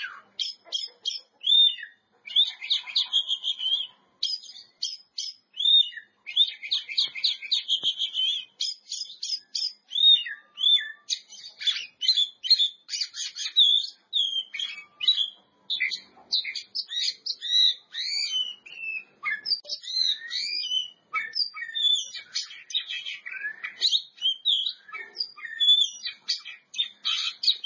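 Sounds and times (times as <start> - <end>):
Oriental magpie-robin song of chirps, trills and whistles: 0.0 - 27.6.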